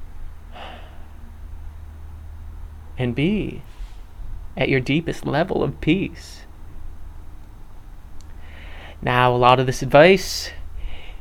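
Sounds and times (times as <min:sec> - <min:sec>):
low hum: 0:00.0 - 0:11.2
deep breath in and out through the nose: 0:00.4 - 0:01.8, 0:08.4 - 0:09.0, 0:10.8 - 0:11.2
speech: 0:03.0 - 0:03.8, 0:04.6 - 0:06.5, 0:09.0 - 0:10.6.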